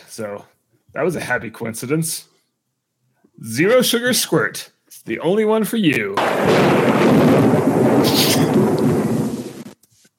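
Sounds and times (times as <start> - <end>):
speech: 0.2 - 2.3, 3.4 - 8.8
stock thunder sound effect: 6.2 - 9.8.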